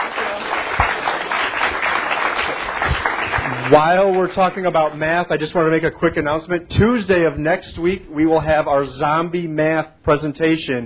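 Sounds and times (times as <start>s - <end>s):
crowd applauding: 0.0s - 5.0s
speech: 3.7s - 10.8s.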